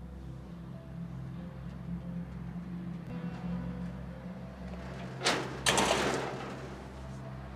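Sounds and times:
steady low rumble: 0.0s - 7.5s
large gate of a house closing: 4.6s - 7.2s.

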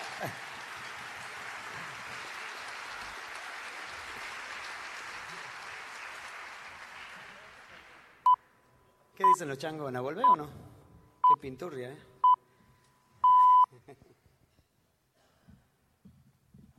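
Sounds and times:
crowd applause in the main hall: 0.0s - 8.2s
speech: 0.2s - 0.5s, 9.4s - 10.7s, 11.3s - 12.1s.

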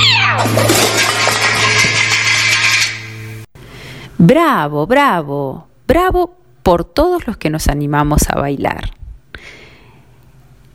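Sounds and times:
loud falling cat meow: 0.0s - 0.8s
steady low hum: 0.0s - 10.7s
busy rattling and clattering: 0.4s - 3.2s
speech: 4.2s - 9.0s.

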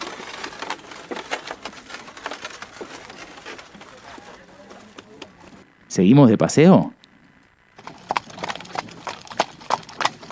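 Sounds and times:
horses' hooves clip-clopping pulling a carriage through the city: 0.0s - 5.6s, 7.8s - 10.3s
speech: 5.9s - 7.0s.

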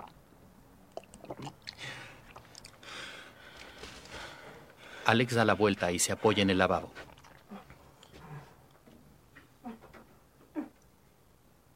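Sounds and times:
man in a bathtub gulping a glass of drink: 0.0s - 4.2s, 7.0s - 8.4s
speech: 5.1s - 7.1s.

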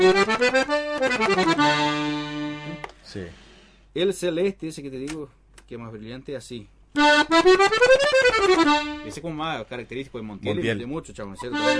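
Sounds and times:
speech: 0.0s - 1.6s, 3.2s - 11.7s
accordion played on the master register with all four reed voices open: 0.0s - 3.0s, 7.0s - 9.3s, 11.4s - 11.7s.

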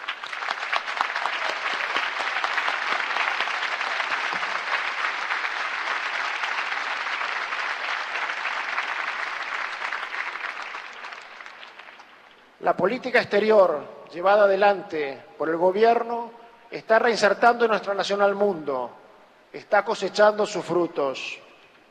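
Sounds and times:
large audience applauding: 0.0s - 12.5s
speech: 12.7s - 21.4s.

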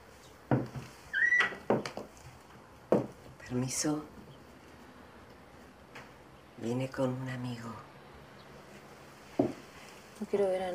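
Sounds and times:
bedroom door opening with a rising creak: 1.1s - 1.9s
knock on a bedroom door: 1.6s - 2.0s, 2.9s - 3.2s, 9.4s - 9.6s
speech: 3.5s - 4.2s, 6.6s - 7.9s, 10.2s - 10.7s.

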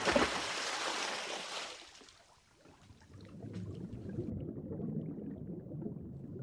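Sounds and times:
bright splashy rush of water: 0.0s - 4.3s
soft underwater bubbling: 2.6s - 6.4s
low underwater rumble beneath the sea: 2.7s - 6.4s.

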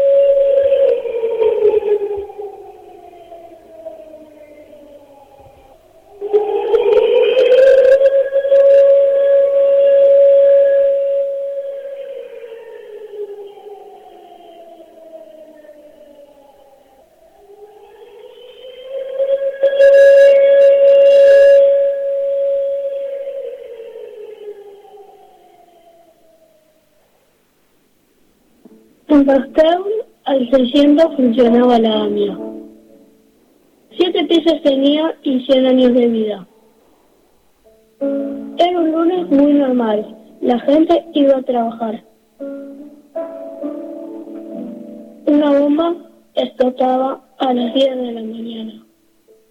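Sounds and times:
memorial siren wailing for the AMIA bomb attack anniversary: 0.0s - 27.0s, 29.1s - 32.8s, 38.0s - 48.9s
speech: 29.3s - 29.9s, 30.5s - 32.4s, 34.6s - 36.5s, 39.8s - 42.1s, 46.6s - 48.8s.

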